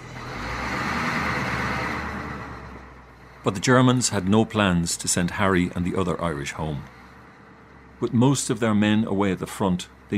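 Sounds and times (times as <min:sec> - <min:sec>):
heavy lorries rumbling past: 0:00.0 - 0:10.1
speech: 0:03.4 - 0:07.0, 0:08.0 - 0:10.1.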